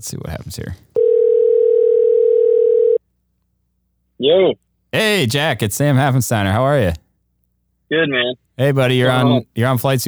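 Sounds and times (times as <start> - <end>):
speech: 0.0 - 1.0, 4.2 - 7.0, 7.9 - 10.0
telephone dial tone while a call is placed: 1.0 - 3.0.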